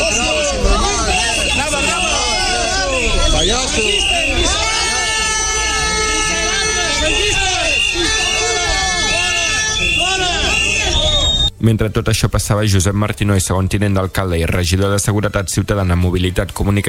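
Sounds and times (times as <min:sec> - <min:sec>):
independence protest crowd shouting chants and insults: 0:00.0 - 0:11.5
shrill sustained whistles in a protest crowd: 0:00.0 - 0:11.6
speech: 0:11.6 - 0:16.8.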